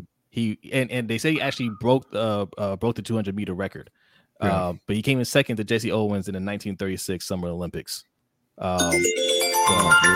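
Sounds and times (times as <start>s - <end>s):
speech: 0.4s - 10.1s
phone melodic chime: 8.8s - 10.1s.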